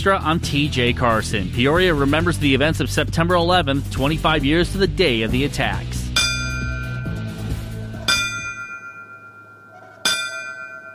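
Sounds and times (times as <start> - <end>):
speech: 0.0 - 6.0
loud clear ceremonial bell strikes: 6.1 - 7.3, 8.1 - 10.9.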